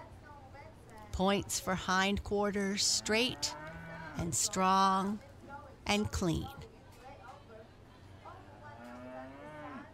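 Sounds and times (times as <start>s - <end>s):
steady noise in a livestock barn: 0.0s - 9.9s
speech: 1.2s - 3.6s, 4.2s - 5.3s, 5.9s - 6.7s
red-ribbon calf mooing in a livestock barn at a fair: 2.9s - 4.4s, 8.8s - 9.9s.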